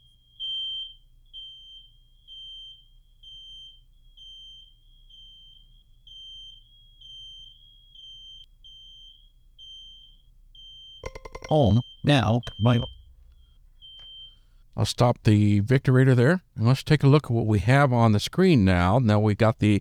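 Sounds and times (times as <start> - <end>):
smoke alarm beeping: 0.2 - 14.6
low hum: 11.0 - 13.6
speech: 11.5 - 12.9, 14.8 - 19.7.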